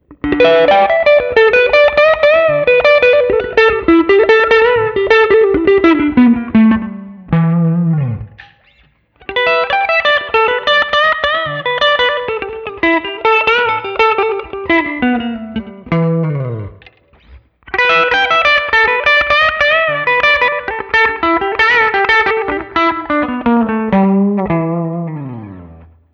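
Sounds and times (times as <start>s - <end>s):
rockabilly riff on a Guild Starfire III electric guitar: 0.0s - 26.1s.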